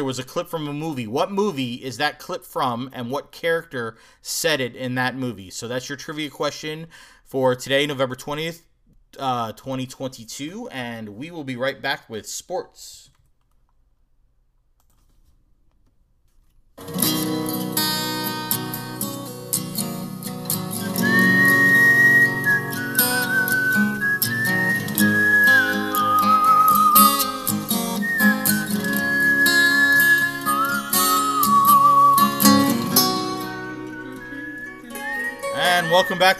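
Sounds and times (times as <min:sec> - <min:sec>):
speech: 0:00.0 - 0:13.1, 0:35.9 - 0:36.3
instrumental music backing: 0:16.8 - 0:36.3
person whistling a melody: 0:20.8 - 0:36.3.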